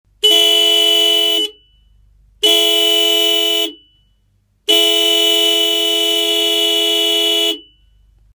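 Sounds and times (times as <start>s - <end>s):
12V disc horn 340 430Hz: 0.2s - 1.6s, 2.4s - 3.8s, 4.7s - 7.7s.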